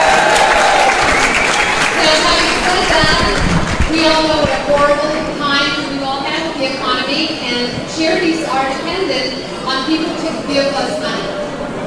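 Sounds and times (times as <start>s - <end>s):
large audience applause: 0.0s - 4.0s
faint crowd voices: 1.0s - 11.8s.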